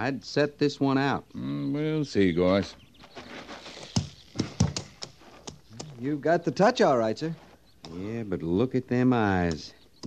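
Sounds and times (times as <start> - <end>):
speech: 0.0 - 2.8, 6.0 - 10.0
horse's hooves stamping on hard ground: 3.0 - 6.0.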